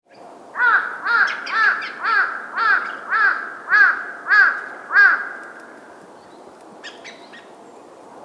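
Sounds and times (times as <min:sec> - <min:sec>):
crow cawing: 0:00.6 - 0:06.0.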